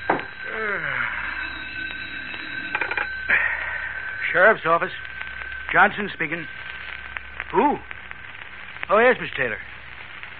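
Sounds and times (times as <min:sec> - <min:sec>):
desk telephone bell ringing: 0:00.0 - 0:06.5
person yawning with a long falling groan: 0:00.4 - 0:02.6, 0:07.5 - 0:07.9
speech: 0:04.4 - 0:05.1, 0:05.7 - 0:06.6, 0:07.5 - 0:07.9, 0:08.9 - 0:09.7.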